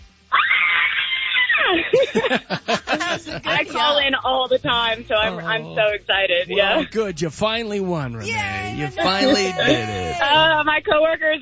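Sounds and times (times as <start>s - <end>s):
laughter: 0.4s - 6.0s, 8.9s - 10.7s
speech: 1.9s - 11.3s
contest winner yelling excitedly in celebration: 8.2s - 10.5s.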